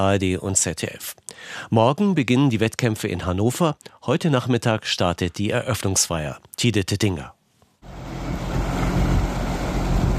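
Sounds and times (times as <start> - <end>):
speech: 0.0 - 7.4
low tugboat engine hum: 7.8 - 10.1
tugboats towing a floating stage across a lake: 7.8 - 10.1
wind over a lake: 7.8 - 10.1.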